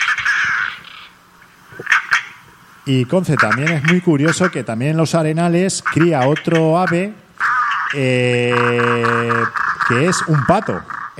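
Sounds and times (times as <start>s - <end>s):
European roller giving a harsh rasping rattle: 0.0s - 1.2s, 1.8s - 2.4s, 3.4s - 4.6s, 5.8s - 11.1s
European roller brief loud scratchy calls: 0.0s - 2.5s, 3.2s - 4.7s, 5.6s - 11.1s
speech: 2.9s - 7.2s, 7.9s - 11.1s.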